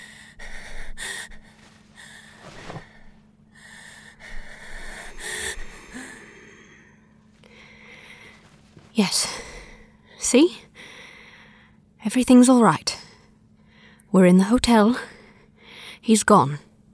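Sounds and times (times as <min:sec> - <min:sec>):
heavy wheezy gasping breaths in a hotel: 0:00.0 - 0:11.8
speech: 0:09.0 - 0:09.4, 0:10.3 - 0:10.6, 0:12.0 - 0:12.9, 0:14.1 - 0:15.1, 0:16.0 - 0:16.7.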